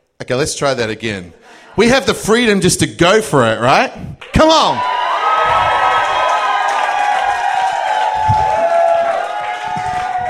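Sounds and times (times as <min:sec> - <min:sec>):
speech: 0:00.3 - 0:04.9
large crowd cheering and shouting: 0:04.5 - 0:10.2
scattered clapping: 0:05.5 - 0:10.2.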